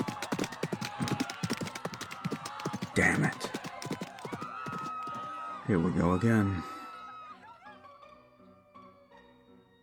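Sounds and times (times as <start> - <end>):
horse hooves galloping: 0.0 - 5.3
speech: 3.0 - 3.5, 5.7 - 6.7.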